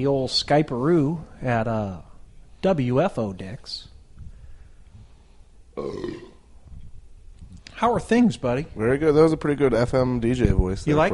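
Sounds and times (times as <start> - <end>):
speech: 0.0 - 3.9, 5.8 - 6.3, 7.8 - 11.1
loud throaty belch: 5.7 - 6.5.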